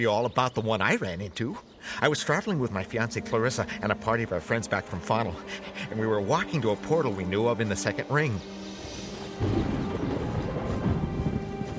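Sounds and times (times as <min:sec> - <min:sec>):
speech: 0:00.0 - 0:08.6
steady rain pouring with a low rumbling undertone: 0:07.8 - 0:11.7.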